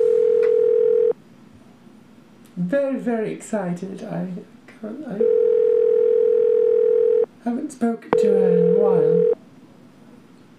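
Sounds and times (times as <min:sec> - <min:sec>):
telephone ringback tone while a call connects: 0:00.0 - 0:01.1, 0:05.2 - 0:07.3, 0:08.2 - 0:09.4
speech: 0:02.7 - 0:05.5, 0:07.4 - 0:09.4.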